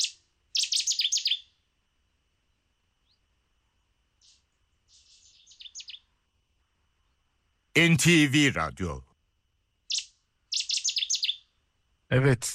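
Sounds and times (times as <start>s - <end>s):
reed warbler singing scratchy chattering notes: 0.0s - 1.5s, 4.2s - 6.1s, 9.9s - 11.5s
speech: 7.8s - 9.1s, 12.1s - 12.5s.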